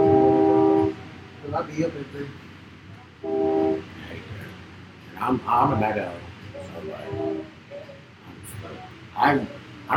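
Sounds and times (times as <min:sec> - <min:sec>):
train horn blasting: 0:00.0 - 0:01.0, 0:03.2 - 0:04.0, 0:06.9 - 0:07.7
people talking quietly: 0:00.0 - 0:09.9
speech: 0:01.6 - 0:02.5, 0:03.2 - 0:04.3, 0:05.2 - 0:07.4, 0:08.7 - 0:09.9.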